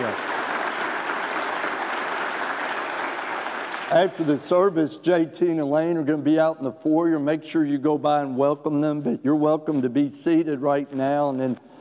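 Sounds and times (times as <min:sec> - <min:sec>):
church audience applauding during a service: 0:00.0 - 0:04.6
speech: 0:03.9 - 0:11.7.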